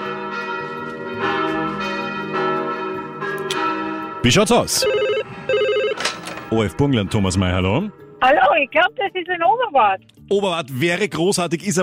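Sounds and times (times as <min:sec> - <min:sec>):
church bells ringing: 0:00.0 - 0:05.8
speech: 0:04.2 - 0:05.0, 0:06.5 - 0:11.8.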